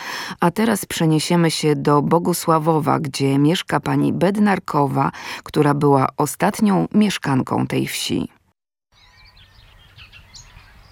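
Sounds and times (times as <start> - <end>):
speech: 0.3 - 8.4
several birds chirping and trilling outdoors in a village: 8.9 - 10.9.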